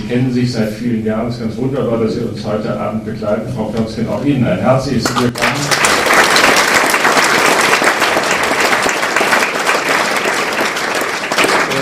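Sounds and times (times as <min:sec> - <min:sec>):
speech: 0:00.1 - 0:05.8
large audience applauding: 0:05.0 - 0:11.7.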